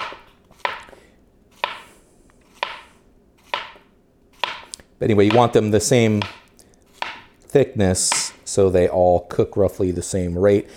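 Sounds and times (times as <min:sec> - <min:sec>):
knife chopping food into pieces for frying: 0:00.0 - 0:07.4
speech: 0:05.0 - 0:06.4, 0:07.6 - 0:10.7.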